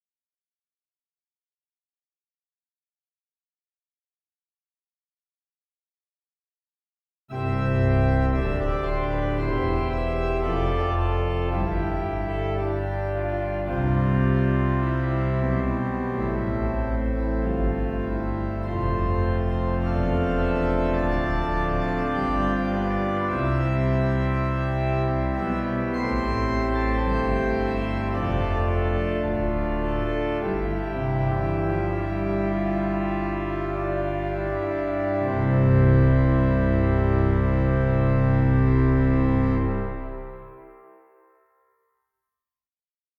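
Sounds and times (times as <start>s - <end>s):
organ: 7.3s - 41.2s
trombone: 7.4s - 40.8s.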